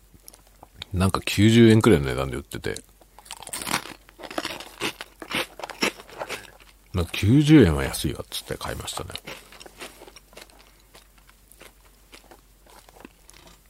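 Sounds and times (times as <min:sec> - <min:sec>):
speech: 0:00.9 - 0:02.9, 0:07.0 - 0:09.4
chewing crunchy Poteron snack sticks: 0:02.6 - 0:13.6.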